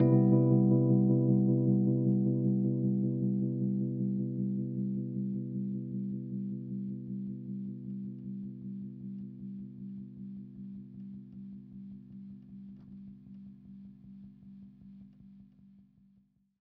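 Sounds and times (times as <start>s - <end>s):
electric piano playing a major seventh chord: 0.0s - 9.2s.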